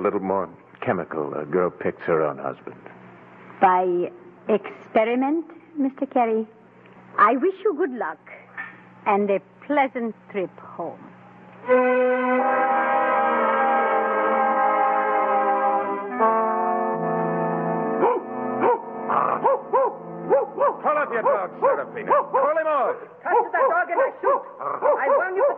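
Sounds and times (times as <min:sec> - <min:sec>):
speech: 0:00.0 - 0:03.0, 0:03.6 - 0:06.6, 0:07.2 - 0:08.4, 0:09.0 - 0:13.0, 0:20.4 - 0:25.5
steady sustained tone: 0:11.6 - 0:19.2
dog barking and yipping: 0:18.0 - 0:22.6, 0:23.2 - 0:25.5.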